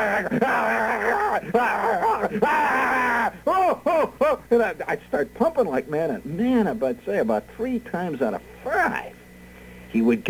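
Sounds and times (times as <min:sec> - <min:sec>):
speech: 0:00.0 - 0:02.7, 0:03.8 - 0:09.2, 0:09.9 - 0:10.2
person imitating an animal's frantic attacking yell: 0:00.0 - 0:04.4.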